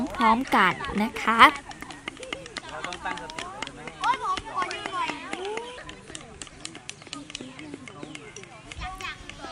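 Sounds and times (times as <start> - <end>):
children chattering and calling in a wood-carving class on temple grounds: 0.0 - 9.5
speech: 0.2 - 1.8.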